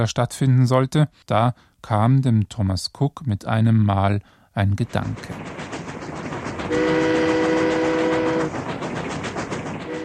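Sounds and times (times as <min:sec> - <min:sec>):
speech: 0:00.0 - 0:05.6, 0:06.7 - 0:07.1
steam train rumbling along the rails: 0:04.7 - 0:10.0
long loud steam train whistle blast: 0:06.7 - 0:08.6, 0:09.8 - 0:10.0.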